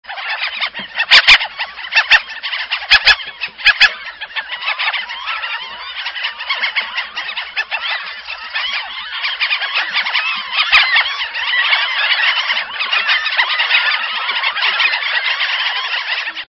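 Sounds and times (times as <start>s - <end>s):
Franklin's gull calls: 0.0s - 16.5s.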